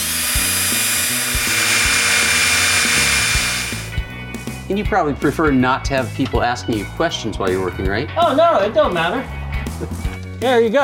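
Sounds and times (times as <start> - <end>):
power drill drilling into a metal safe found in a scrapyard: 0.0 - 4.0
speech: 4.7 - 10.8.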